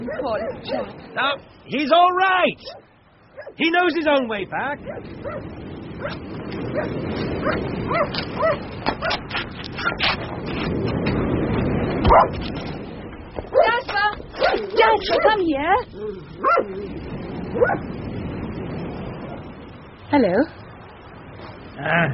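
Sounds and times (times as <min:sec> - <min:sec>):
dog barking and yipping in excited bursts: 0:00.0 - 0:01.0, 0:02.6 - 0:03.6, 0:04.8 - 0:10.0, 0:12.1 - 0:12.4, 0:14.4 - 0:15.4, 0:16.4 - 0:16.8, 0:17.6 - 0:17.9
quiet hum: 0:00.0 - 0:22.1
steady rumbling background: 0:00.0 - 0:22.1
speech: 0:00.1 - 0:02.9, 0:03.5 - 0:11.2, 0:12.0 - 0:12.8, 0:14.4 - 0:18.0, 0:20.1 - 0:20.6, 0:21.8 - 0:22.1.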